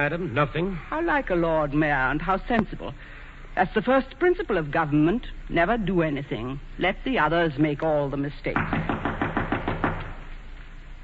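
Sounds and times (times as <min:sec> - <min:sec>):
speech: 0:00.0 - 0:09.0
knocking on a wooden door: 0:08.6 - 0:10.3.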